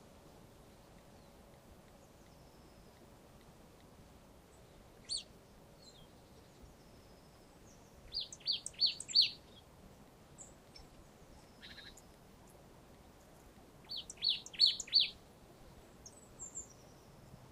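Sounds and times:
Poecile palustris calls: 0:08.1 - 0:09.4, 0:10.7 - 0:12.0, 0:13.9 - 0:15.2.

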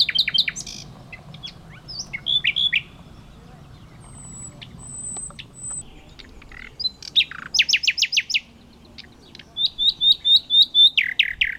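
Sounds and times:
common nightingale Luscinia megarhynchos singing: 0:00.0 - 0:11.5.

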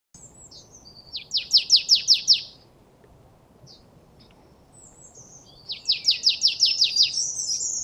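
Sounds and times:
marsh tit Poecile palustris sharp repeated calls: 0:00.3 - 0:02.6, 0:04.8 - 0:07.8.

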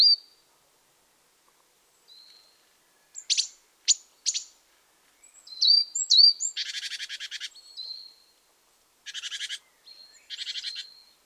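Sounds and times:
great tit Parus major calls: 0:02.1 - 0:04.5, 0:05.2 - 0:08.2, 0:09.0 - 0:11.2.

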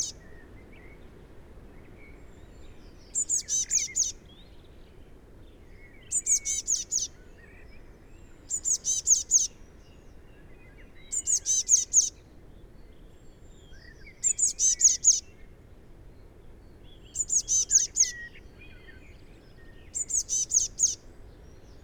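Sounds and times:
faint background hiss: 0:00.0 - 0:21.8
Eurasian blue tit calls: 0:03.1 - 0:04.2, 0:06.1 - 0:07.1, 0:08.5 - 0:09.6, 0:11.1 - 0:12.2, 0:14.2 - 0:15.2, 0:17.2 - 0:18.3, 0:19.9 - 0:21.0.

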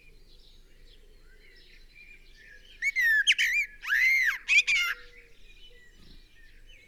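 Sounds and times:
common blackbird singing: 0:02.8 - 0:05.0.

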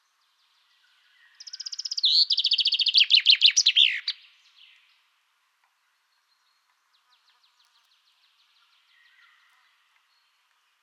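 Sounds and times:
common chaffinch Fringilla coelebs singing: 0:01.4 - 0:04.2.

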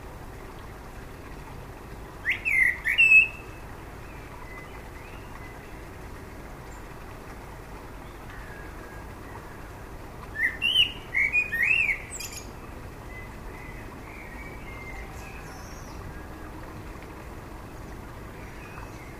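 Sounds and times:
common blackbird (Turdus merula) singing: 0:02.2 - 0:03.6, 0:10.4 - 0:12.5, 0:13.1 - 0:16.3.

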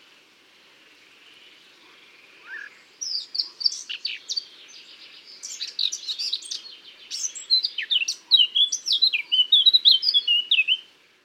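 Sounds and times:
Eurasian blackcap Sylvia atricapilla song: 0:02.4 - 0:10.9.

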